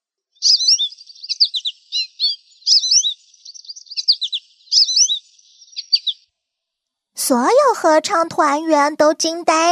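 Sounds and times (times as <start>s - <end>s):
canary singing a bright sweet warbling song with trilled phrases: 0.3s - 6.8s
speech: 7.3s - 9.7s.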